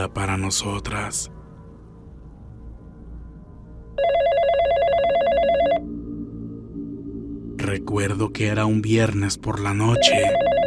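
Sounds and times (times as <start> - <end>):
speech: 0.0 - 1.4, 7.7 - 10.5
low hum: 0.0 - 10.6
telephone ringing with a rapid trilling electronic bell: 4.0 - 5.8, 9.9 - 10.6.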